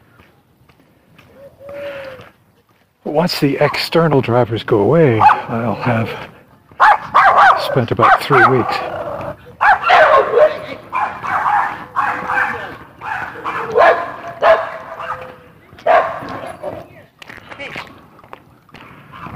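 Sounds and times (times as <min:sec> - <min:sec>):
speech: 0:03.0 - 0:06.3, 0:07.6 - 0:09.0
several dogs barking and yipping: 0:05.1 - 0:05.6, 0:06.7 - 0:17.1, 0:18.9 - 0:19.3.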